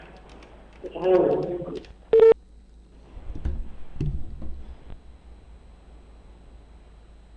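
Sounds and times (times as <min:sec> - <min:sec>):
person talking while placing a call to an education bureau: 0:00.8 - 0:01.9
short loud electronic telephone dialing or ringing tone: 0:02.1 - 0:02.4.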